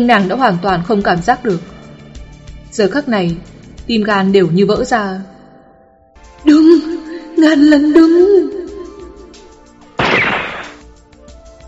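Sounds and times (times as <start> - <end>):
speech: 0.0 - 1.7, 2.7 - 5.3, 6.4 - 8.6
gunshot over farm fields: 10.0 - 10.9.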